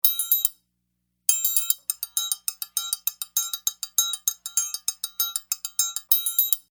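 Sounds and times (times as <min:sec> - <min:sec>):
triangle: 0:01.3 - 0:06.7.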